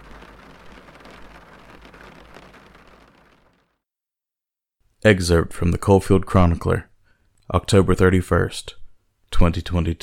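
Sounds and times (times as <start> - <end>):
heavy rain pelting down: 0.0 - 3.8
speech: 5.0 - 6.9, 7.5 - 8.8, 9.4 - 10.0.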